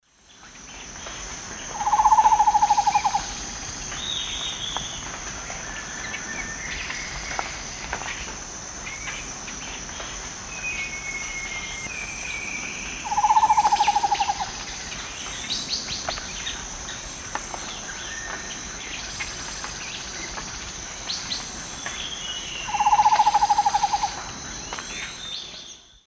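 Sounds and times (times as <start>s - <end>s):
Myrmothera campanisona calling: 1.7s - 4.9s, 13.0s - 15.0s, 22.6s - 24.3s.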